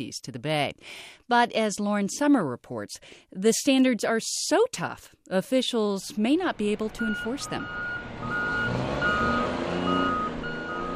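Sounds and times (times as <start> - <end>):
speech: 0.0 - 8.4
heavy machinery rumbling at a container port: 6.5 - 10.9
high reversing beeps of trucks: 6.9 - 10.9.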